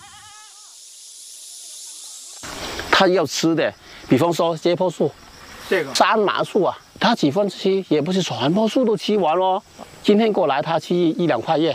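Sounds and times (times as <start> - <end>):
karst mountain goat bleating: 0.0 - 0.7
steady broad hiss: 0.0 - 11.7
speech: 3.0 - 11.7.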